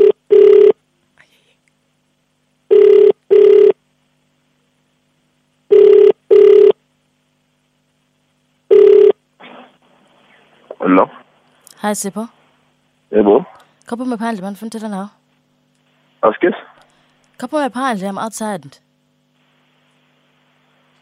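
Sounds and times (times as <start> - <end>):
telephone ringback tone in double rings: 0.0 - 0.8, 2.7 - 3.8, 5.7 - 6.8, 8.7 - 9.2
speech: 10.8 - 11.2, 11.8 - 12.4, 13.1 - 15.2, 16.2 - 16.7, 17.4 - 18.8.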